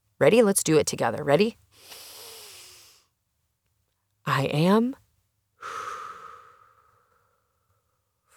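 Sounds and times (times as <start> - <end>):
speech: 0.2 - 2.0, 4.3 - 5.0
deep breath inhaled into the belly then exhaled: 1.7 - 3.1, 5.6 - 8.3.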